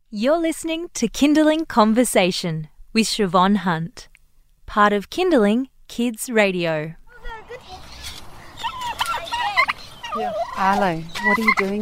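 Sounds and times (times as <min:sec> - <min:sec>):
speech: 0:00.1 - 0:04.1, 0:04.7 - 0:07.8, 0:10.2 - 0:11.7
chicken clucking while being fed on a farm: 0:07.2 - 0:11.7.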